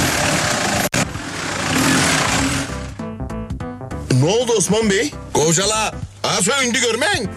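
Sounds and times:
car engine running roughly and sputtering: 0.0 - 3.1
speech: 4.2 - 7.3.

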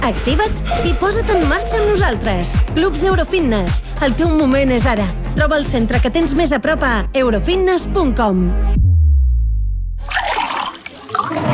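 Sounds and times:
speech: 0.1 - 8.8
water being poured into a glass for a toast: 10.0 - 11.5.

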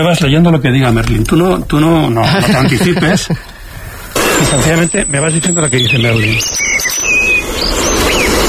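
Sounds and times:
speech: 0.0 - 3.6, 4.5 - 8.4
steady outdoor hiss: 0.0 - 8.4
laughter: 2.2 - 3.5
European robin singing: 4.6 - 8.4.

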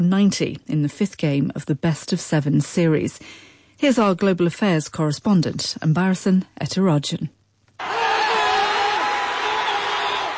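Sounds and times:
speech: 0.0 - 8.0
large crowd of sports fans roaring and cheering: 7.8 - 10.3.

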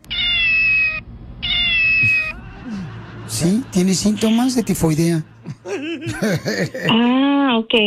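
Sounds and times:
cat meowing: 0.0 - 2.4
laughter: 2.0 - 7.0
speech: 3.4 - 7.8.

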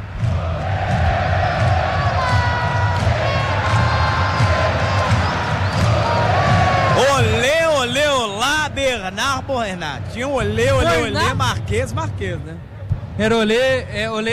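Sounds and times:
football stadium crowd chanting a player's name: 0.0 - 9.1
large stadium crowd cheering: 0.0 - 12.4
speech: 9.4 - 14.3.

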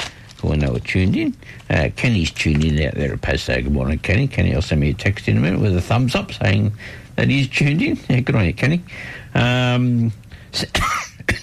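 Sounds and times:
speech: 0.5 - 11.4
person coughing after swallowing a fly: 10.6 - 11.4.

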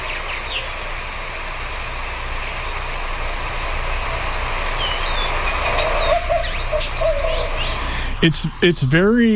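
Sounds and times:
faint chirps from other birds: 0.0 - 0.8, 4.3 - 8.8
steady rushing hiss: 0.0 - 9.3
white-winged dove cooing: 5.6 - 7.9
speech: 8.2 - 9.3.

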